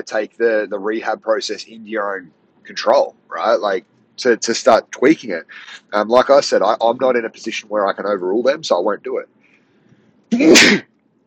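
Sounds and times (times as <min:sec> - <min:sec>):
speech: 0:00.0 - 0:09.4, 0:10.3 - 0:10.9
loud sneeze: 0:10.3 - 0:10.9.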